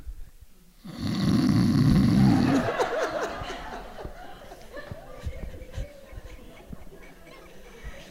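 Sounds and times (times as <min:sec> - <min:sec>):
man imitating a snore: 0:00.8 - 0:02.7
quieter breathy chuckling: 0:02.0 - 0:08.1.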